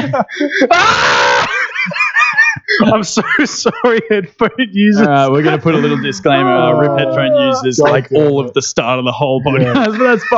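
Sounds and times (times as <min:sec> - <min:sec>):
laughter: 0:00.0 - 0:10.3
speech: 0:00.1 - 0:02.0, 0:02.7 - 0:10.3
long harsh scream: 0:00.7 - 0:01.5
people yelling into microphones: 0:00.7 - 0:01.6, 0:05.0 - 0:08.5.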